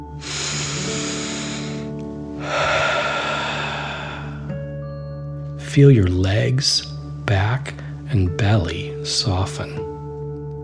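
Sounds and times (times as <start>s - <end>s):
deep breath drawn in: 0.0s - 4.6s
forceful rushing exhale: 0.1s - 4.5s
speech: 5.8s - 9.9s.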